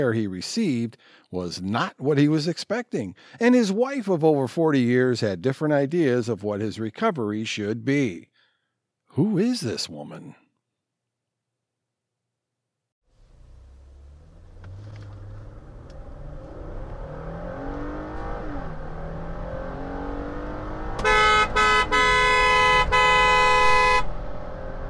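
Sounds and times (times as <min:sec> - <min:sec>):
speech: 0:00.0 - 0:08.3, 0:09.2 - 0:10.4
car engine revving hard as the car is driven fast: 0:13.2 - 0:24.8
loud car horn blaring: 0:21.0 - 0:24.2.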